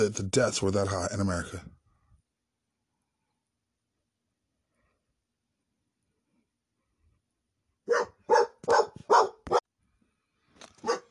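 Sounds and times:
speech: 0.0s - 1.8s
dog barking: 7.8s - 9.7s, 10.8s - 11.0s.

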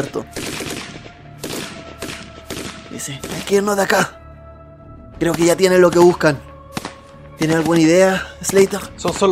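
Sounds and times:
speech: 0.0s - 0.5s, 3.0s - 4.2s, 5.2s - 6.5s, 7.4s - 9.3s
gunfire crossfire with bullets flying: 0.3s - 3.8s, 6.7s - 8.7s.

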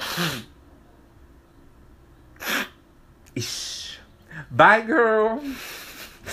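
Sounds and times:
sharp breathy sneezes: 0.0s - 0.5s, 2.4s - 2.8s
speech: 0.2s - 0.5s, 3.4s - 3.8s, 4.5s - 6.3s.

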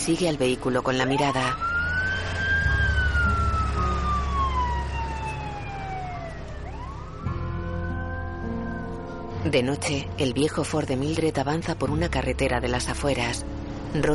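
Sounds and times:
speech: 0.0s - 1.7s, 9.4s - 14.1s
steady low engine rumble: 0.0s - 14.1s
ambulance siren wailing as it pulls away from a police station: 0.8s - 9.3s.

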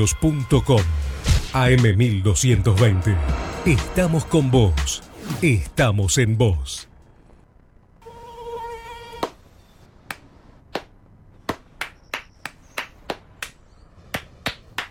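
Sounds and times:
speech: 0.0s - 6.9s
thin high mosquito buzz: 8.0s - 9.3s
sharp hand slap: 10.1s - 14.9s.

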